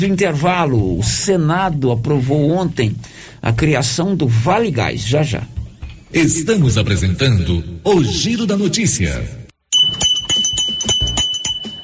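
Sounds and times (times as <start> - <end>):
speech: 0.0 - 10.1
handmade Minas Gerais craftwork bell ringing: 9.7 - 11.8.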